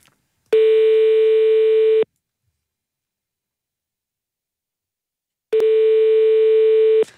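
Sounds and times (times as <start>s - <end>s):
ringback tone of a telephone call to a mobile number: 0.5s - 2.0s, 5.6s - 7.0s.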